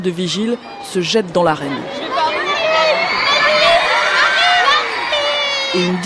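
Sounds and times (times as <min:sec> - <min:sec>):
speech: 0:00.0 - 0:02.1, 0:05.7 - 0:06.0
large excited crowd of teenage fans screaming and shrieking: 0:01.9 - 0:06.0.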